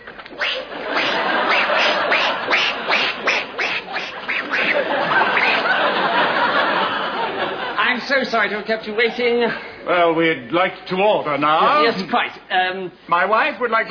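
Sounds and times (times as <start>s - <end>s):
person imitating a duck quacking: 0.4s - 5.6s
laughter: 0.6s - 8.3s
speech: 8.2s - 13.8s.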